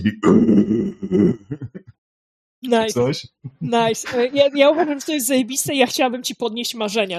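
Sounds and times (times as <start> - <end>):
voice imitating a revving car engine: 0.0 - 1.8, 2.7 - 4.8
laughter: 0.0 - 1.9, 2.9 - 6.0
speech: 2.7 - 7.1.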